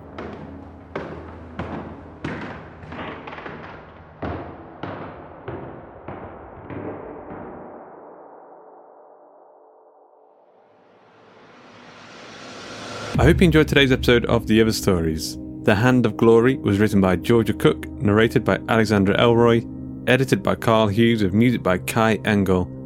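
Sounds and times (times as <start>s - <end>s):
heavy footsteps thumping toward a cellar: 0.0s - 6.4s
rising whoosh: 10.4s - 14.9s
speech: 13.2s - 22.8s.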